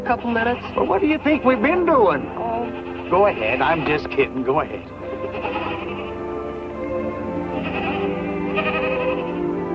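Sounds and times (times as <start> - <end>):
goats bleating: 0.0 - 1.3, 1.9 - 4.4, 5.0 - 6.3, 7.4 - 9.6
speech: 0.1 - 5.6.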